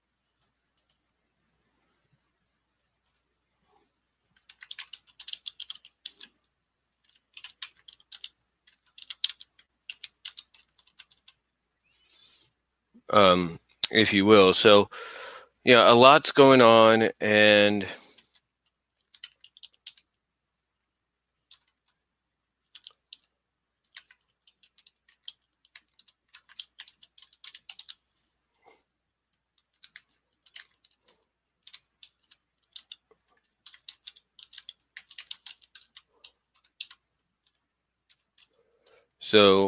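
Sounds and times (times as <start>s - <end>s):
fingers typing on a computer keyboard: 4.4s - 6.3s, 7.0s - 11.4s, 18.2s - 20.1s, 21.5s - 22.0s, 22.6s - 28.0s, 29.4s - 39.0s
speech: 13.1s - 18.0s, 39.4s - 39.6s.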